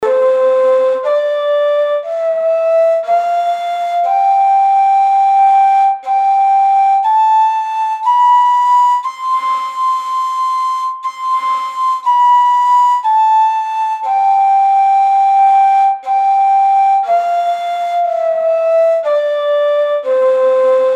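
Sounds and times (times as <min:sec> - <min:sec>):
ney flute playing in çargah: 0:00.0 - 0:20.9.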